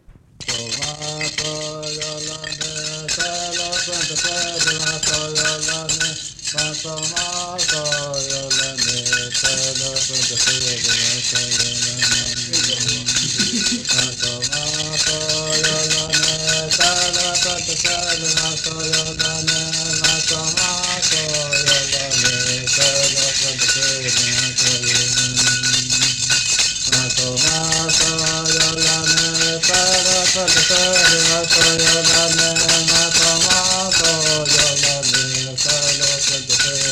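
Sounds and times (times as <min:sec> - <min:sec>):
person chanting in sustained melodic lines: 0:00.4 - 0:36.9
rattle accompanying sung ritual dance: 0:00.4 - 0:36.9
speech: 0:04.1 - 0:15.4, 0:17.1 - 0:20.4
laughter: 0:12.8 - 0:14.2.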